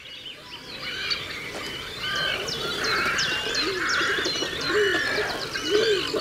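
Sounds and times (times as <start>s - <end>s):
many birds chirping and whistling in a colony: 0.0s - 6.1s
great cormorants calling: 2.1s - 6.1s.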